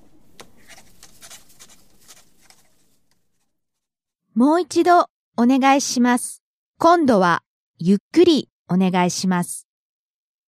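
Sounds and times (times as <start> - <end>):
smooth-writing pen scratching across paper: 0.6 - 3.5
speech: 4.4 - 9.7.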